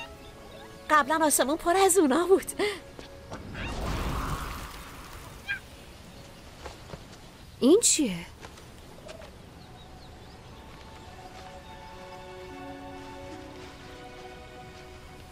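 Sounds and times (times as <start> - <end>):
speech: 0.9 - 3.5, 7.6 - 8.3
flying lemur chirping squeak: 5.4 - 5.6.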